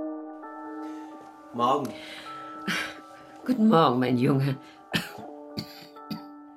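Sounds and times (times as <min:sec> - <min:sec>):
speech: 0:01.6 - 0:02.8, 0:03.4 - 0:04.8
short raspy coughs: 0:04.9 - 0:06.4.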